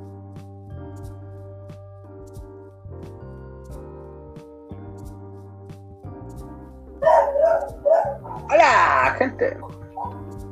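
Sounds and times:
dog barking: 7.0s - 10.3s
speech: 8.6s - 9.8s.

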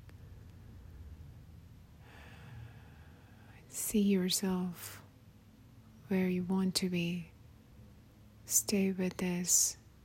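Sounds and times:
quiet slow breathing: 2.0s - 3.6s
speech: 3.8s - 5.0s, 6.1s - 7.3s, 8.5s - 9.8s.

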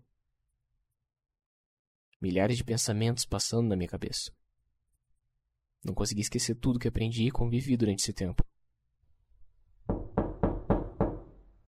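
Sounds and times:
speech: 2.2s - 4.4s, 5.8s - 8.5s
heavy knocking on a front door: 9.9s - 11.4s.

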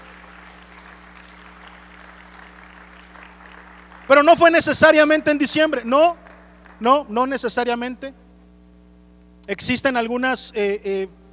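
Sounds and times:
audience applauding: 0.0s - 7.2s
low steady hum: 0.0s - 11.3s
speech: 4.1s - 8.2s, 9.5s - 11.2s.

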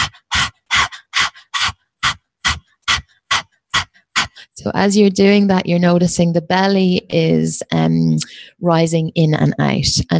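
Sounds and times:
person imitating dog panting as breath-work exercise: 0.0s - 4.6s
speech: 4.6s - 10.1s.

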